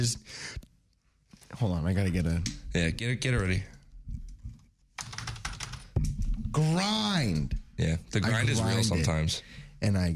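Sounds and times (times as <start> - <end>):
speech: 0.0 - 0.7, 1.5 - 3.8, 6.6 - 10.1
rapid typing on a computer keyboard: 5.0 - 6.0.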